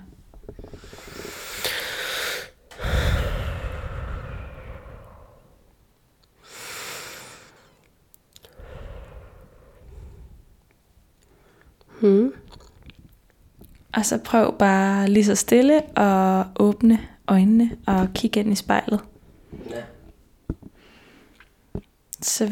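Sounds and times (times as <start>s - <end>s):
slow deep breaths in and out: 0.3s - 13.1s, 16.8s - 21.9s
speech: 12.0s - 12.4s, 14.0s - 19.1s, 22.2s - 22.5s.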